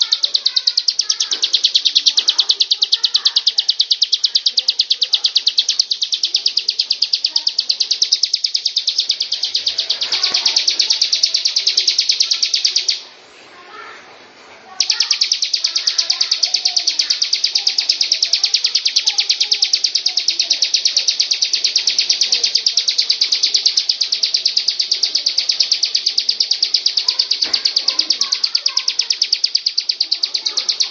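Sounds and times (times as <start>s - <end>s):
lovebird performing a long ngekek song: 0.0s - 13.1s, 14.8s - 30.9s.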